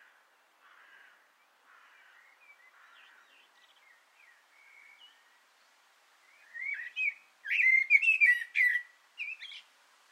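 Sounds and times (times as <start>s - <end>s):
common blackbird singing mellow fluted phrases from an antenna: 3.6s - 5.4s, 6.2s - 9.7s.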